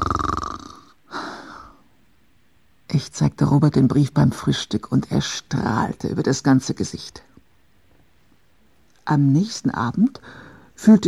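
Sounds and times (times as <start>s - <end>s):
person snoring: 0.0s - 1.8s
speech: 2.9s - 7.3s, 9.1s - 11.0s.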